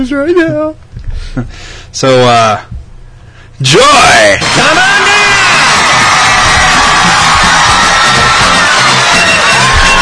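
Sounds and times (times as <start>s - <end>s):
speech: 0.0s - 2.7s, 3.6s - 5.2s
audience screaming and yelling: 4.4s - 10.0s.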